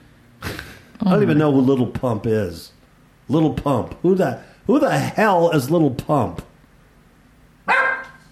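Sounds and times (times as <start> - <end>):
speech: 1.0 - 6.5
dog barking: 7.6 - 8.3.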